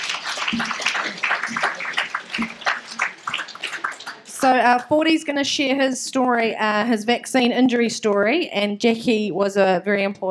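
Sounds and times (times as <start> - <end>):
crowd applauding with many hands clapping: 0.0 - 4.6
speech: 0.5 - 0.8, 4.4 - 10.3.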